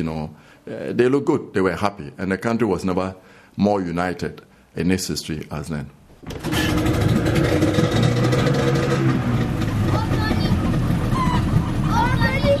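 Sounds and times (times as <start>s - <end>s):
speech: 0.0s - 7.1s
boat engine droning on a river: 6.2s - 12.5s.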